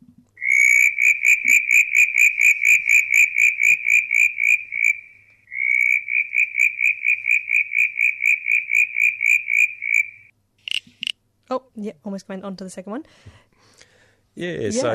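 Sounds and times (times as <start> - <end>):
southern brown tree frog calling in rapid pulsing trills: 0.4 - 11.1
speech: 11.8 - 13.4, 14.4 - 14.9.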